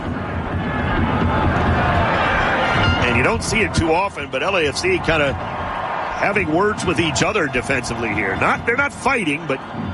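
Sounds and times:
large stadium crowd roaring during soccer corner kick: 0.0s - 9.9s
speech: 3.2s - 5.6s, 6.2s - 9.9s.

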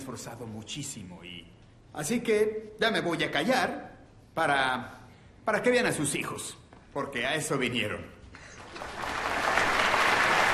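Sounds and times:
speech: 0.1s - 8.1s
audience applause at a high school choir concert: 8.5s - 10.5s.

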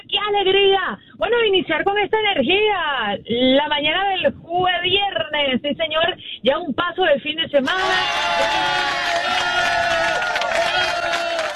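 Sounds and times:
speech: 0.3s - 10.0s
crowd cheering and whooping: 7.7s - 11.5s
crowd clapping: 8.4s - 11.5s.

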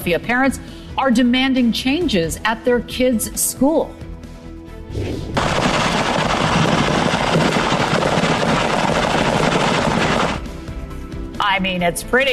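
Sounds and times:
speech: 0.0s - 4.0s, 4.9s - 5.7s, 11.6s - 12.3s
fireworks stand exploding after catching fire: 5.4s - 10.5s.

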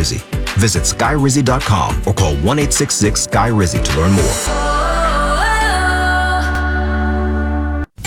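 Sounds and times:
speech: 0.0s - 4.7s
steady tonal drone: 3.7s - 7.9s.

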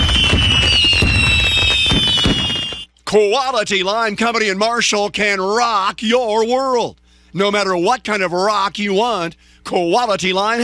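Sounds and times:
fireworks booming: 0.0s - 2.9s
speech: 3.1s - 10.6s.

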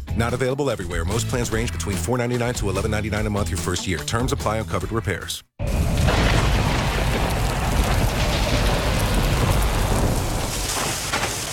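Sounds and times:
speech: 0.2s - 5.7s
deep rumbling thunder: 5.6s - 11.5s
heavy rain pouring: 5.6s - 11.5s
hail striking surfaces: 5.7s - 11.5s.

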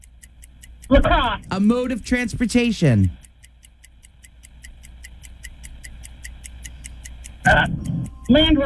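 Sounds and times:
game show countdown clock ticking: 0.0s - 8.6s
speech: 0.9s - 3.2s, 7.5s - 8.6s.

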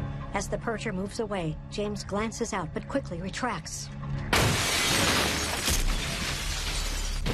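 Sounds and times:
speech: 0.4s - 4.0s
door and windows shattering: 4.3s - 7.3s.

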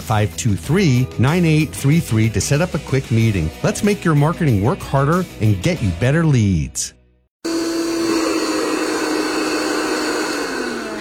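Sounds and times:
speech: 0.1s - 7.0s
vacuum cleaner running while vacuuming floors: 7.4s - 10.9s.

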